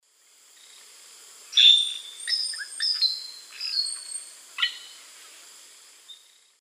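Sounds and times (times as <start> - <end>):
Molothrus oryzivorus singing in the South American Eastern Lowlands: 1.6 - 4.9.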